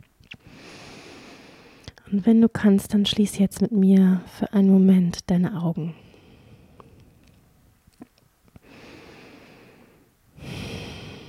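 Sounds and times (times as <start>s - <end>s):
slow deep breathing in and out during a guided relaxation exercise: 0.4s - 2.0s, 6.0s - 7.3s, 8.6s - 11.2s
speech: 2.1s - 6.0s.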